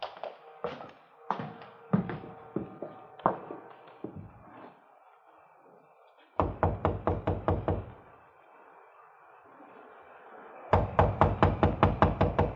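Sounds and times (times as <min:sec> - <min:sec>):
loud heavy knocking on a front door: 0:06.4 - 0:07.9, 0:10.7 - 0:12.5.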